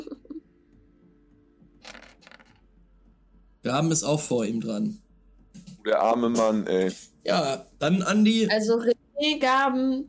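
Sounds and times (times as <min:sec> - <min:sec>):
dice rattling and clattering across a surface: 0:01.9 - 0:02.5
speech: 0:03.6 - 0:05.0, 0:05.8 - 0:10.0
laughter: 0:05.9 - 0:07.5.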